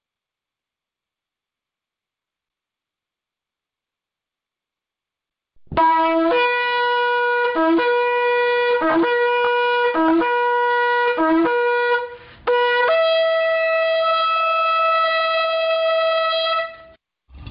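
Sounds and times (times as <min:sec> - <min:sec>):
shofar ram's horn blasts: 0:05.7 - 0:17.0.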